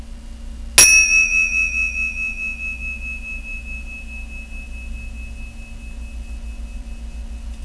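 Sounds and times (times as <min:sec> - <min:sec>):
tingsha meditation cymbals ringing: 0:00.8 - 0:07.6.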